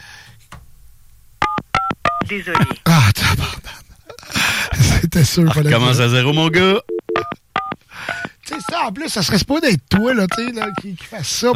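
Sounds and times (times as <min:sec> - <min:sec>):
touch-tone telephone keypad tones as a number is dialed: 0:01.4 - 0:02.8, 0:06.9 - 0:08.8, 0:10.0 - 0:10.9
speech: 0:02.3 - 0:03.6, 0:05.2 - 0:06.9, 0:08.8 - 0:11.5.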